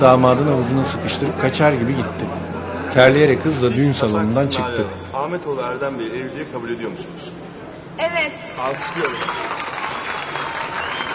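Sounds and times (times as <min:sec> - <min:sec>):
speech: 0:00.0 - 0:07.4, 0:08.0 - 0:09.7
crowd applauding in a wedding hall during a marriage ceremony: 0:08.6 - 0:11.1.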